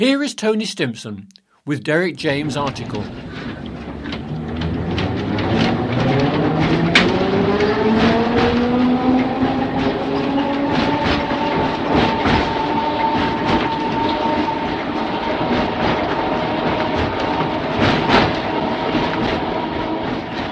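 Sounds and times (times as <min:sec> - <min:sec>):
speech: 0:00.0 - 0:03.6
tram rattling and clanking along rails: 0:02.3 - 0:20.4
tram wheels clicking and knocking: 0:02.4 - 0:20.4.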